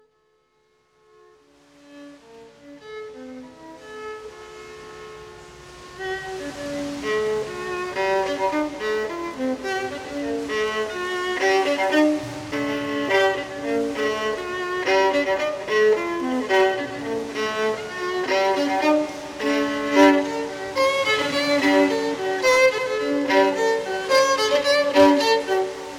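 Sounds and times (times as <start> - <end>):
violin playing in a cave: 0.8 - 25.9.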